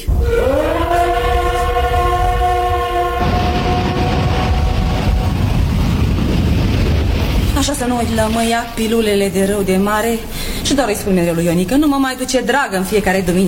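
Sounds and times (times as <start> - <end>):
train horn: 0.0 - 5.8
train rolling along the rails: 0.0 - 13.4
speech: 7.7 - 13.4.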